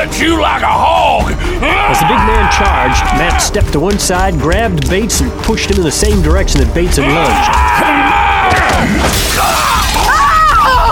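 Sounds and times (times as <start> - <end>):
speech: 0.2 - 0.9, 1.6 - 9.7
window glass shattering: 8.6 - 10.5.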